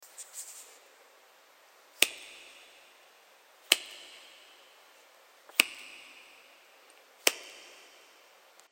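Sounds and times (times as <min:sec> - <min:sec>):
snap with EQ and overdrive and reverb in stereo: 0:02.0 - 0:03.0, 0:03.6 - 0:04.7, 0:05.5 - 0:08.7.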